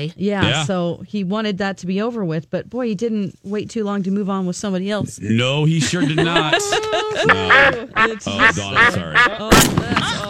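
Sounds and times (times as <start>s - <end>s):
speech: 0.0s - 10.2s
laughter: 5.7s - 10.2s
duck quacking loudly and nasally: 7.2s - 10.2s
gunshot-like bang of duck hunting: 9.5s - 10.1s.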